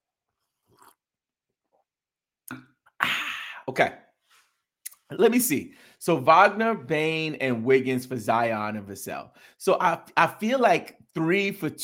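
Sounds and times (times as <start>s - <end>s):
sipping coffee: 0.3s - 1.1s
speech: 3.7s - 4.0s, 5.1s - 11.8s.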